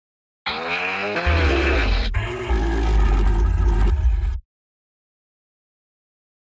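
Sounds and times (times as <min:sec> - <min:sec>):
lion roaring: 0:00.5 - 0:04.4.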